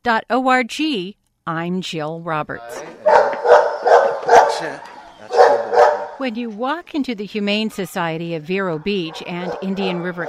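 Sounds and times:
speech: 0:00.0 - 0:03.5, 0:04.5 - 0:05.4, 0:06.2 - 0:10.2
dogs barking at an animal shelter: 0:02.9 - 0:06.6, 0:08.5 - 0:10.2.

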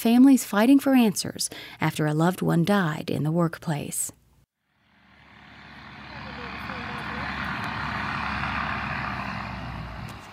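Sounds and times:
speech: 0:00.0 - 0:04.2
heavy dump trucks rumbling past on a residential street: 0:04.8 - 0:10.3.

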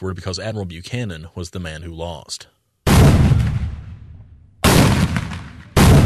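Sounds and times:
speech: 0:00.0 - 0:02.6
ceremonial cannon fire by reenactors at Fort Gaines: 0:02.9 - 0:06.0.

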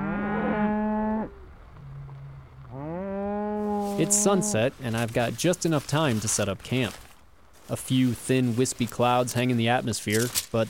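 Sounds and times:
cow mooing in long drawn-out bellows: 0:00.0 - 0:04.7
speech: 0:04.0 - 0:07.0, 0:07.7 - 0:10.6.

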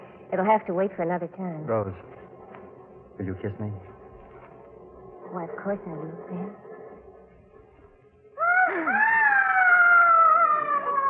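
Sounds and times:
speech: 0:00.3 - 0:02.2, 0:03.2 - 0:03.9, 0:05.3 - 0:06.7
long high-pitched wavering scream: 0:08.4 - 0:11.0.

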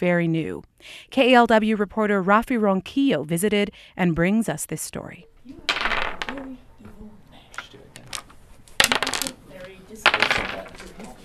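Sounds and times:
speech: 0:00.0 - 0:05.6
dice rolling on a hard tabletop: 0:05.7 - 0:07.0, 0:07.6 - 0:11.2.

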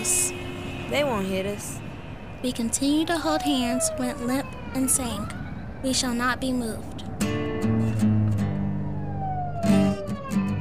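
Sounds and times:
police car sirens wailing: 0:00.0 - 0:06.3, 0:08.5 - 0:10.5
low engine rumble: 0:00.0 - 0:10.5
speech: 0:00.9 - 0:07.4.

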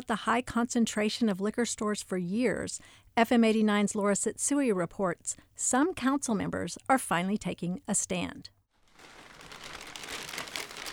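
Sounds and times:
speech: 0:00.0 - 0:08.6
plastic bag holding malt liquor cans crinkling as it is opened on an office desk: 0:08.8 - 0:10.9.

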